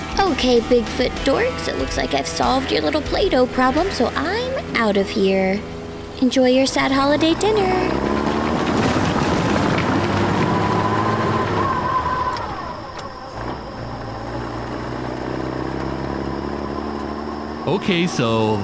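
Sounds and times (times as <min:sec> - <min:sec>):
heavy diesel dump truck engine rumbling: 0:00.0 - 0:18.6
speech: 0:00.2 - 0:08.1, 0:17.7 - 0:18.6
dump truck load shifting and clattering: 0:07.2 - 0:11.6.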